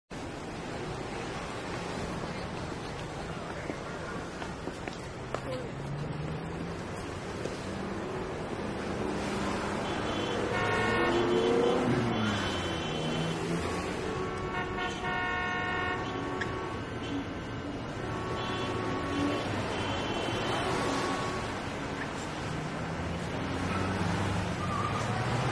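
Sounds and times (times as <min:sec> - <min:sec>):
downtown city ambience: 0:00.1 - 0:25.5.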